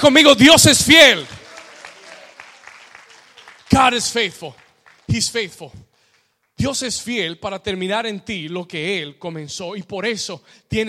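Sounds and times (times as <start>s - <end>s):
speech: 0.0s - 1.4s, 3.7s - 5.8s, 6.6s - 10.8s
crowd applauding: 0.9s - 6.6s.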